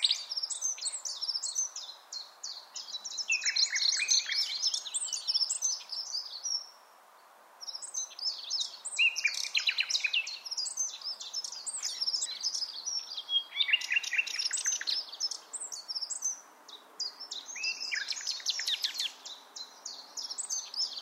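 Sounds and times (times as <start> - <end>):
Common nightingale Luscinia megarhynchos singing: 0.0 - 6.8, 7.6 - 21.0
faint background hiss: 0.0 - 21.0.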